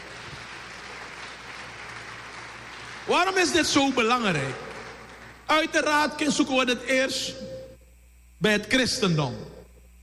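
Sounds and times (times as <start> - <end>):
church congregation applauding after a spoken prayer: 0.0 - 6.3
speech: 3.1 - 4.6, 5.5 - 7.5, 8.4 - 9.5.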